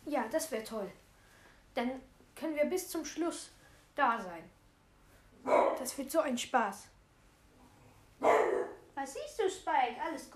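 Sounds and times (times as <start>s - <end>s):
speech: 0.2s - 1.0s, 1.8s - 4.6s, 5.4s - 6.9s, 9.0s - 10.3s
single sharp dog bark: 5.4s - 5.9s, 8.2s - 8.9s.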